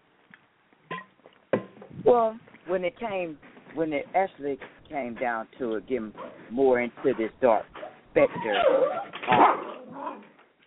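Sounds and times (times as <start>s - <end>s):
speech: 2.0s - 9.6s
dog whimpering and whining to get out of the room: 7.8s - 9.2s.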